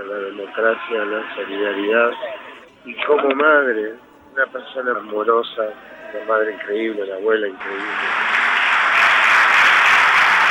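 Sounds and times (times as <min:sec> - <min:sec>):
speech: 0:00.3 - 0:08.3
large crowd applauding outdoors at a cemetery: 0:07.6 - 0:10.4.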